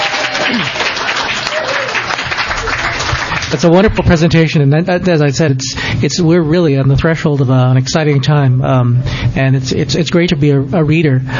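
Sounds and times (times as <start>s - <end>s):
room full of people applauding: 0.0s - 3.9s
speech: 3.5s - 11.3s.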